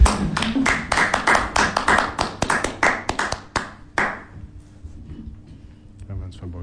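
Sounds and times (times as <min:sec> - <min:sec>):
hands clapping: 0:00.0 - 0:04.3.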